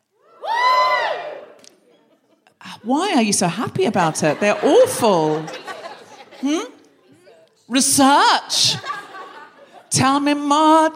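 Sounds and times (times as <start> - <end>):
live audience cheering: 0.2 - 1.6
people whooping: 0.2 - 1.6
laughter: 1.8 - 2.6, 3.9 - 7.2, 8.5 - 9.9
speech: 2.8 - 5.6, 6.4 - 6.7, 7.7 - 9.0, 9.9 - 10.9.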